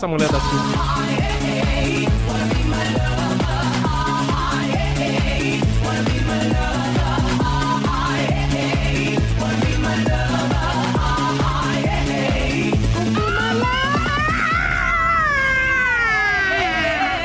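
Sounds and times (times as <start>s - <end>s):
speech: 0.0s - 3.0s
steady rhythmic musical beat: 0.0s - 14.5s
woman screaming in long wavering wails: 13.2s - 17.2s.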